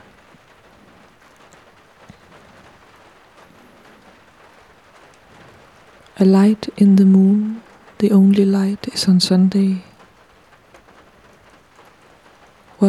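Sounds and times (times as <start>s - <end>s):
rain falling outside: 0.0s - 12.8s
speech: 6.2s - 9.9s.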